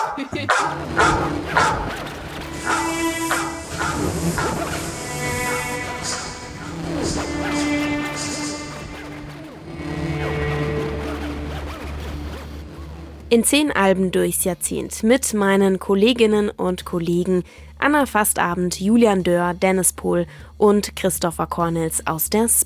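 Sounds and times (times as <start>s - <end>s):
dog barking: 0.0s - 4.8s
indistinct voices: 0.0s - 14.5s
speech: 0.2s - 1.9s, 13.3s - 22.6s
steady hum: 0.4s - 15.3s.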